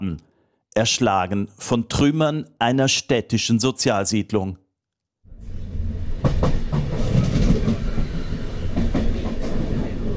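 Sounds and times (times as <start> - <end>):
speech: 0.0 - 4.6
regional express train rolling through the Po Valley near Bergamo: 5.3 - 10.1.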